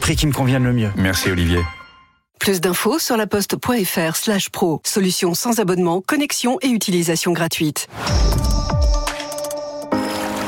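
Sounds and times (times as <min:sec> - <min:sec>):
speech: 0:00.1 - 0:01.8, 0:02.4 - 0:09.0
swimming pool water lapping and sloshing: 0:10.0 - 0:10.4.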